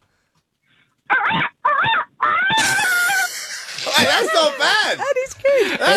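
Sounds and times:
person imitating a rooster crowing: 1.2s - 4.2s
laughter: 2.6s - 5.9s
speech: 4.4s - 5.9s.

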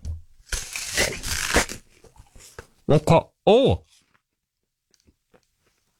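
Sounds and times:
person biting into a crisp Fizz apple: 0.6s - 1.9s
speech: 2.9s - 3.9s.

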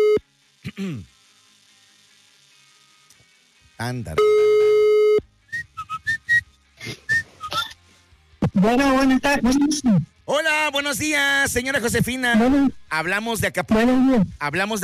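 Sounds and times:
speech: 0.8s - 1.1s, 3.8s - 4.5s, 8.6s - 14.8s
telephone ringback tone: 4.2s - 5.2s.

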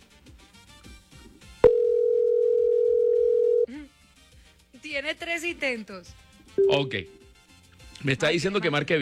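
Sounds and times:
phone line ringing tone: 1.6s - 3.7s, 6.6s - 7.2s
speech: 5.0s - 7.2s, 8.0s - 9.0s.

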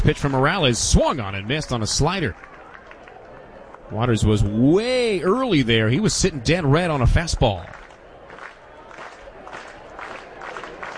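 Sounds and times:
speech: 0.0s - 2.5s, 3.9s - 7.8s
baseball crowd cheering in stadium: 0.0s - 10.9s.

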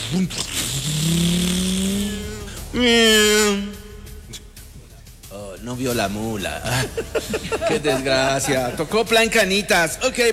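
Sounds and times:
speech: 0.1s - 1.7s, 2.7s - 3.8s, 5.6s - 10.3s
motorcycle engine revving and speeding away: 0.6s - 4.2s
laughter: 6.5s - 9.6s.

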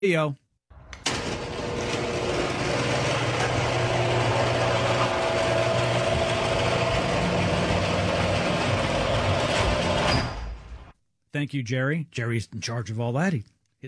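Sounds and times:
speech: 0.0s - 0.4s, 11.3s - 13.8s
noisy shrieking garage door operating: 0.8s - 10.9s.

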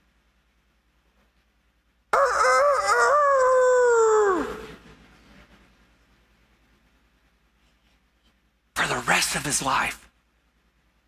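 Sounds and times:
rooster crowing: 2.2s - 4.8s
speech: 9.5s - 10.0s.

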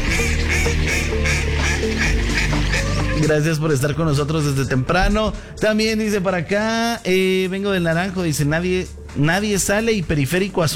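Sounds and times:
flock of ducks quacking: 0.0s - 3.3s
speech: 2.7s - 10.7s.

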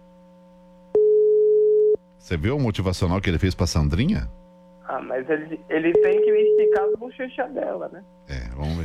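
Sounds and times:
faint constant hum: 0.0s - 8.8s
telephone call tone as a call is placed: 1.0s - 2.0s, 5.6s - 7.0s
speech: 2.2s - 4.4s, 5.0s - 8.8s.

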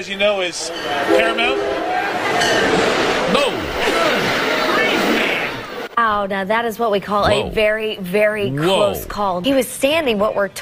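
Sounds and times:
speech: 0.0s - 4.5s, 6.0s - 10.6s
commuter train rushing past a station platform: 0.0s - 5.9s.

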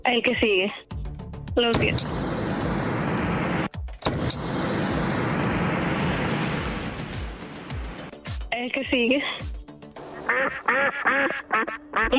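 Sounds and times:
speech: 0.1s - 0.9s, 1.5s - 2.2s, 8.6s - 9.5s, 10.3s - 12.1s
loud steady rushing noise: 1.8s - 8.1s
duck quacking: 10.1s - 12.1s.

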